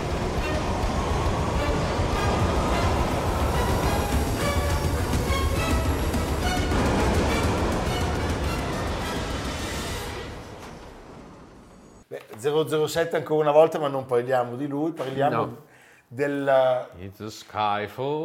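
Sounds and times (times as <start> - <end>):
London Underground train running on rails with metallic squeals and clatter: 0.0 - 12.0
speech: 12.4 - 18.2.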